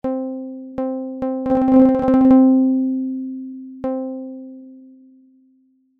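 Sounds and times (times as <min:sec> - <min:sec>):
string model synthesized tone: 0:01.5 - 0:02.9.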